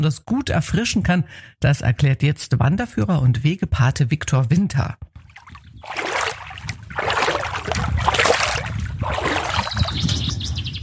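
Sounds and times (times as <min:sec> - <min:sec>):
speech: 0:00.0 - 0:05.1
footsteps wading through shallow water: 0:05.1 - 0:10.2.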